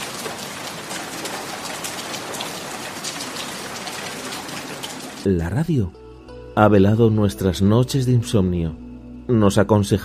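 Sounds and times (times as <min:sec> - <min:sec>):
steady rain in an Amazon jungle: 0:00.0 - 0:05.3
speech: 0:05.2 - 0:06.0, 0:06.6 - 0:10.0.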